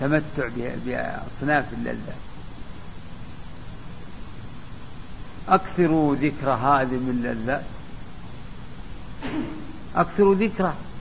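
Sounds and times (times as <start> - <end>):
speech: 0.0 - 2.3, 5.5 - 7.8, 9.3 - 10.9
low steady noise: 0.0 - 10.9
sneeze: 9.2 - 9.9.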